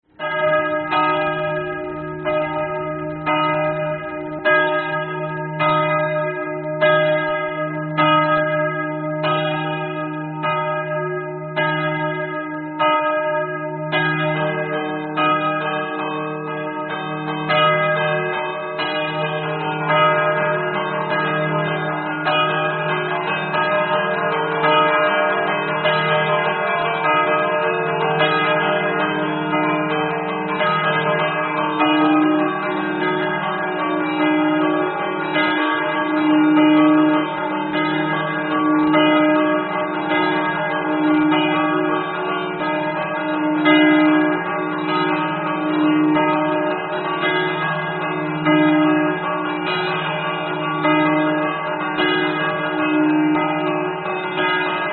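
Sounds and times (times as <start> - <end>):
church bells: 0.0 - 54.9.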